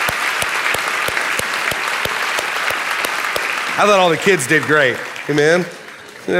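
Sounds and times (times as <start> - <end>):
crowd applauding: 0.0 - 6.3
faint rhythmic thump of hands clapping in a beat: 0.0 - 6.3
speech: 3.8 - 6.3.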